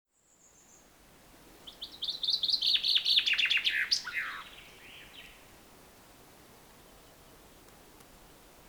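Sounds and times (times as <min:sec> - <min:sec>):
common chaffinch Fringilla coelebs singing: 0:01.6 - 0:05.4.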